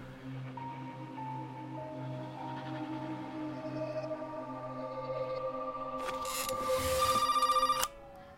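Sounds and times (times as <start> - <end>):
sustained humming drone: 0.0 - 8.3
telephone bell trilling: 6.2 - 8.0.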